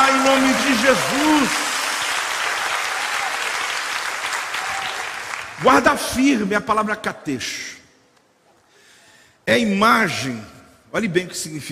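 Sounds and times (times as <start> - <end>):
large crowd applauding during preaching: 0.0 - 5.8
speech: 0.3 - 1.7, 5.7 - 7.8, 9.5 - 11.7.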